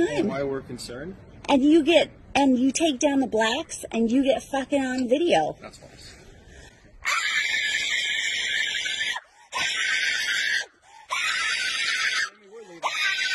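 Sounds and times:
speech: 0.0s - 6.2s
person screaming angrily: 7.0s - 13.3s.

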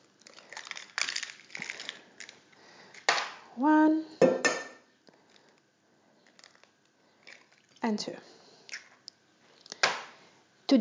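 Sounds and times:
whole eggs being cracked into a bowl: 0.0s - 3.4s, 6.2s - 7.8s, 8.6s - 10.2s
speech: 3.6s - 4.4s, 7.9s - 8.3s.

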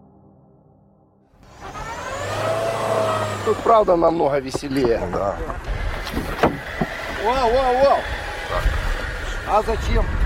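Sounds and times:
large heavy armored cash-transport vehicle engine revving near Vuhledar: 1.4s - 4.2s, 5.6s - 10.2s
wheels churning in deep black-earth mud ruts: 1.4s - 10.2s
speech: 3.5s - 6.6s, 7.2s - 8.8s, 9.5s - 10.2s.

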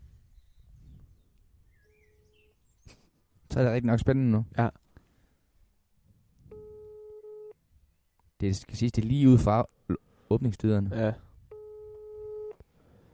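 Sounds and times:
speech: 3.6s - 4.8s, 8.4s - 11.2s
telephone ringing tone of an outgoing call: 6.5s - 7.6s, 11.5s - 12.6s.

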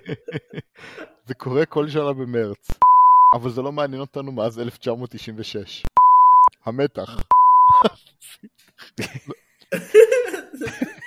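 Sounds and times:
laughter: 0.0s - 0.8s, 7.7s - 11.0s
speech: 0.1s - 5.9s, 6.6s - 10.9s
pure electronic beeps in a recording: 2.8s - 3.4s, 6.0s - 6.5s, 7.3s - 7.8s.

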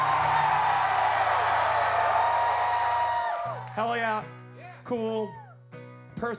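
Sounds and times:
large crowd in a club screaming and cheering: 0.0s - 4.0s
speech: 3.8s - 5.4s, 6.2s - 6.3s.

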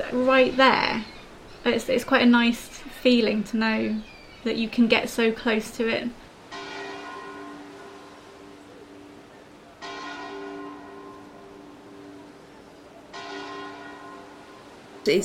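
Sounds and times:
speech: 0.0s - 6.2s, 15.1s - 15.2s
deep church bell tolling: 6.5s - 9.2s, 9.8s - 12.4s, 13.1s - 14.6s.

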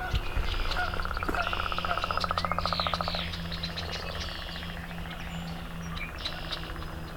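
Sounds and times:
marsh chorus of frogs including chorus frogs: 0.0s - 7.1s
red-winged blackbird and swamp sparrow calls: 0.0s - 7.1s.

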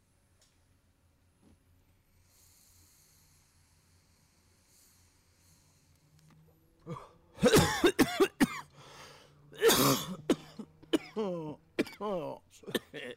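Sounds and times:
harsh coughing fit: 6.8s - 8.8s, 9.6s - 13.1s
throaty voiced sounds: 9.5s - 13.1s.

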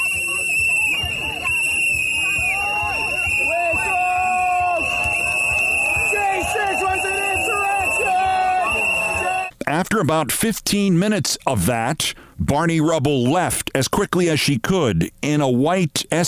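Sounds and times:
rally crowd shouting and jeering: 0.0s - 9.5s
shrill steady whistle-like tone: 0.0s - 9.5s
speech: 10.0s - 16.2s.

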